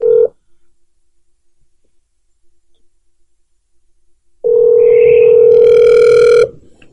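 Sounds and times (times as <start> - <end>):
ringing tone of an outgoing telephone call: 0.0 - 0.3, 4.4 - 6.6.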